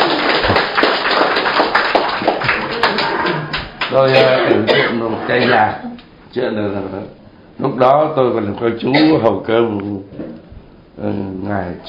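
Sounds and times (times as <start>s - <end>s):
audience applause: 0.0s - 3.9s
speech: 4.0s - 10.4s, 11.0s - 11.8s.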